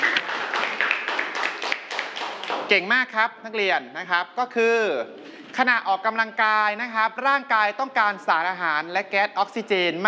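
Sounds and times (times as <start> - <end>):
students clapping in a classroom: 0.0 - 2.8
speech: 2.7 - 10.0.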